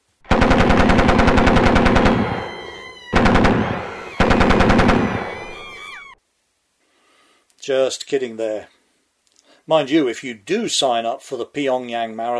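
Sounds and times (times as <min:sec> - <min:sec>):
automatic machine-gun bursts: 0:00.3 - 0:06.1
speech: 0:07.7 - 0:08.8, 0:09.6 - 0:12.3.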